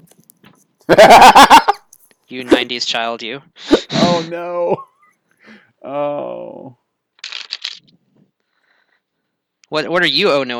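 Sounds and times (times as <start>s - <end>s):
speech: 0.9s - 1.6s, 2.3s - 4.9s, 5.5s - 6.8s, 9.7s - 10.5s
laughter: 0.9s - 1.8s
riffle shuffle of a deck of playing cards: 7.2s - 7.9s.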